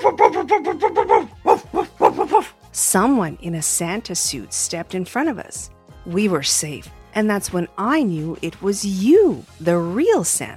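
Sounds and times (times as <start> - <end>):
big dog barking at people outside a grocery store: 0.0 - 2.5
speech: 2.9 - 10.5.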